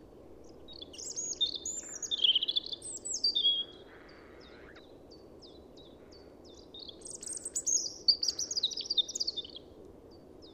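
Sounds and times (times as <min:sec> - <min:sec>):
European robin (Erithacus rubecula) singing with tinkling trills: 0:00.4 - 0:10.5.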